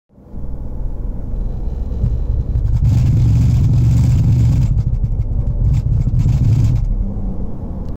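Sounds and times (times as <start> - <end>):
BMW X5 transfer case vibrations: 0.5 - 7.4.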